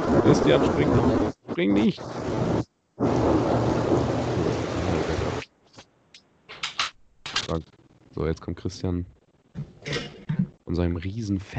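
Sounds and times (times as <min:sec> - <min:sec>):
loud roaring crack of thunder in a storm: 0:00.0 - 0:05.4
rain: 0:00.0 - 0:05.5
speech: 0:00.2 - 0:03.4, 0:07.5 - 0:10.0, 0:10.7 - 0:11.5.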